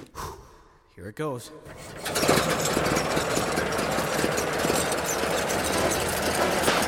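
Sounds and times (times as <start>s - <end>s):
speech: 1.0s - 3.3s
oiled engine running with rattling and knocking: 1.7s - 6.8s.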